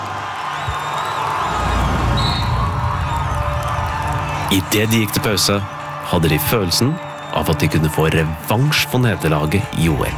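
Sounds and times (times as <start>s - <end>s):
large stadium crowd of French supporters cheering after a goal at a football match: 0.0s - 10.1s
high whistles from a stadium crowd: 0.6s - 2.8s
speech: 4.5s - 10.1s.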